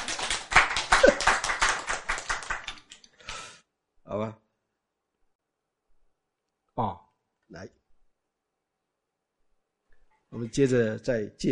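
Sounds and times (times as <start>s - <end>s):
audience clapping hands: 0.0s - 3.5s
speech: 6.8s - 7.8s, 10.4s - 11.4s.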